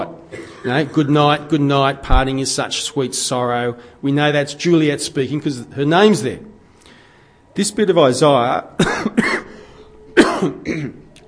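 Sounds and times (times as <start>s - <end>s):
harsh coughs: 0.3s - 1.1s, 8.8s - 11.1s
speech: 0.6s - 6.5s, 7.6s - 9.4s.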